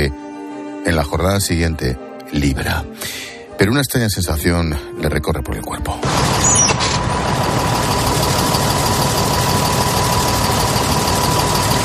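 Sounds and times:
speech: 0.0s - 0.2s, 0.8s - 6.6s
bus engine idling with faint rattling vibration: 6.0s - 11.8s.

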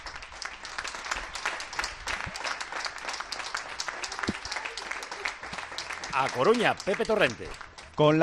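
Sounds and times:
crowd applauding in town: 0.0s - 8.2s
speech: 6.2s - 8.2s.

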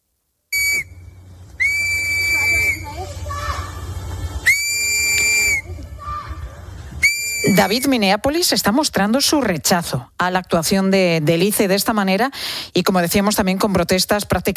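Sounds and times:
whistle blasts blown as a warning in Minneapolis: 0.5s - 3.1s, 4.4s - 5.8s, 7.0s - 8.0s
noisy outdoor crowd murmuring in Minneapolis: 1.5s - 7.9s
speech: 7.6s - 14.5s.

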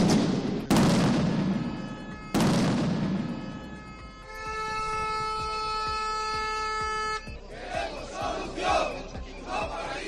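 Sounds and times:
explosions at a miners' street protest in Oviedo Asturias Spain: 0.0s - 3.7s
long blaring horn: 1.3s - 7.8s
noisy crowd shouting in the street: 7.4s - 10.0s.

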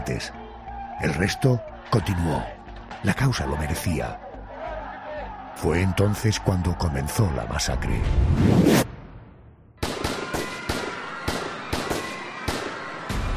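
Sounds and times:
speech: 0.0s - 0.4s, 1.0s - 4.2s, 5.6s - 8.8s
gunshots from rooftops: 9.8s - 13.2s.

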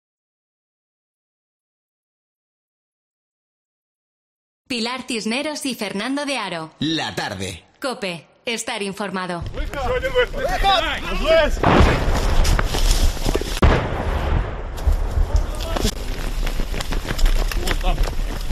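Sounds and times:
speech: 4.7s - 12.2s
artillery and gunfire from combat in eastern Ukraine's Donbass region: 9.4s - 18.5s.

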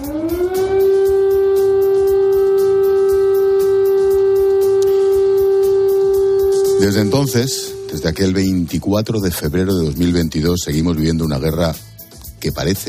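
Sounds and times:
air raid siren wailing: 0.0s - 8.6s
speech: 6.9s - 11.8s, 12.4s - 12.8s.

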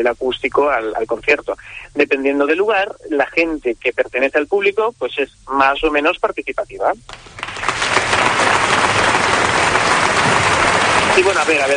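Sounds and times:
speech: 0.0s - 7.4s, 11.2s - 11.7s
audience applause at a classical music concert: 7.1s - 11.7s.

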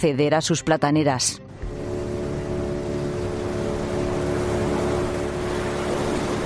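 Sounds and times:
speech: 0.0s - 1.7s
Armed Forces motorboat engine droning at sea: 1.4s - 6.4s
wash of water at sea: 1.7s - 6.4s.

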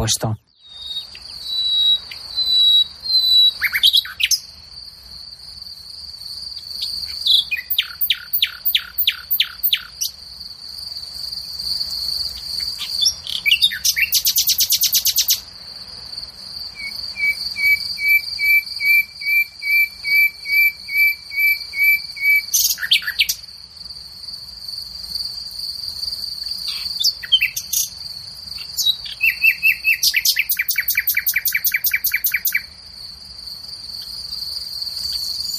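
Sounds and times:
speech: 0.0s - 0.5s
nightingale singing: 0.0s - 4.7s, 6.3s - 10.2s, 11.4s - 15.5s, 16.6s - 23.5s, 26.1s - 32.8s, 33.9s - 35.5s
insect chirring: 0.0s - 35.5s.

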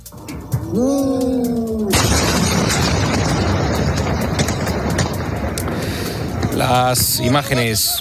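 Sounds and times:
wavering tone: 0.0s - 2.3s
speech: 0.1s - 1.6s, 6.7s - 7.9s
massive explosion in a city: 0.1s - 7.9s.

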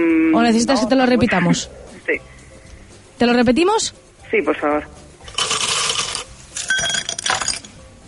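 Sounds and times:
speech: 0.0s - 2.3s, 3.2s - 5.0s
ice cubes clattering into a glass: 5.3s - 7.7s.

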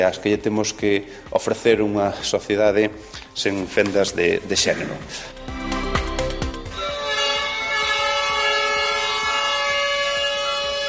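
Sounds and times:
speech: 0.0s - 5.6s
fire brigade horn blasts: 6.6s - 10.8s
fire brigade sirens at a firefighters' protest outside a provincial government building: 6.7s - 10.8s.

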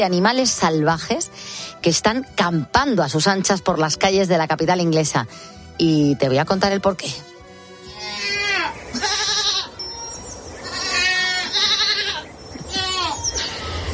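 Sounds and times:
speech: 0.0s - 7.3s
goat bleating: 7.8s - 13.9s.

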